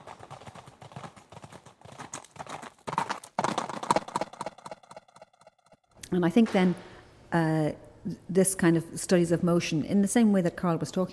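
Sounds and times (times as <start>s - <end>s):
horse hooves galloping: 0.0s - 5.8s
speech: 6.1s - 11.1s.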